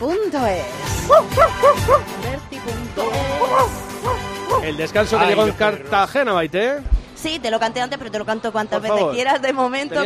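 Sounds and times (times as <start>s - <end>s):
speech: 0.0s - 3.8s, 4.6s - 10.0s
small dog yapping: 1.1s - 2.1s, 3.4s - 4.6s.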